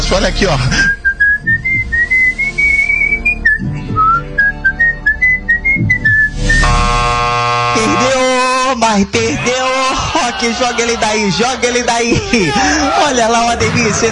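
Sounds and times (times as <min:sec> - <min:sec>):
speech: 0:00.1 - 0:01.6, 0:08.8 - 0:14.0
person whistling the national anthem: 0:00.8 - 0:06.6
loud harsh buzzer-like tone: 0:06.4 - 0:08.8
laughter: 0:09.4 - 0:14.0.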